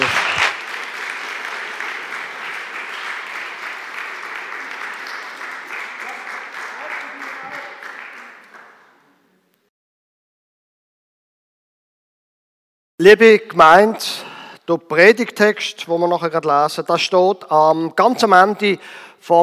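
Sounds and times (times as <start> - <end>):
church audience applause after a service: 0.0 - 9.0
speech: 13.0 - 19.4.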